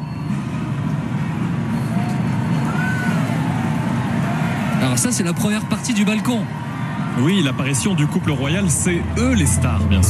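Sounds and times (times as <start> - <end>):
large crowd cheering: 0.7 - 10.0
faint rising shouts or whistles: 1.8 - 3.3
speech: 4.8 - 6.6, 7.2 - 10.0.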